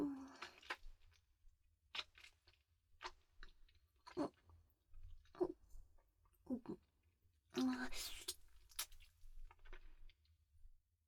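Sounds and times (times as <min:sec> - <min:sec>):
wet chewing and smacking mouth sounds: 0:00.2 - 0:01.3, 0:01.9 - 0:05.6, 0:07.6 - 0:10.2.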